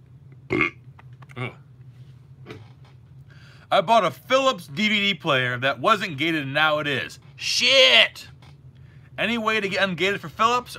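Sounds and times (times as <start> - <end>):
person burping: 0.5 - 1.6
speech: 1.4 - 1.6, 3.7 - 8.3, 9.2 - 10.7.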